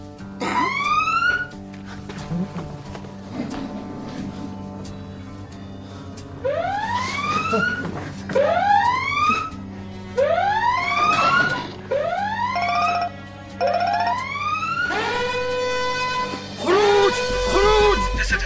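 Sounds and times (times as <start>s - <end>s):
burglar alarm siren wailing: 0.6s - 1.6s, 6.4s - 18.2s.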